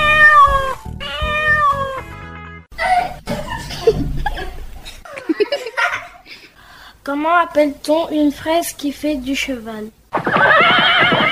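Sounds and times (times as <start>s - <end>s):
cat meowing: 0.0s - 2.1s
people chuckling and laughing: 2.8s - 6.6s
speech: 7.2s - 11.2s.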